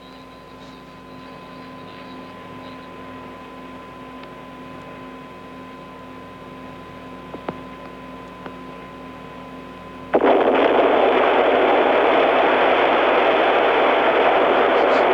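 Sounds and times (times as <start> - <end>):
explosive blast of a hotel building implosion: 10.2 - 15.0.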